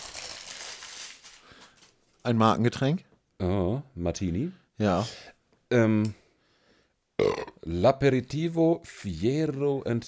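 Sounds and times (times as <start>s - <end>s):
white paper bag holding a drink bottle crinkling open: 0.0s - 2.2s
speech: 2.2s - 6.2s, 7.7s - 10.0s.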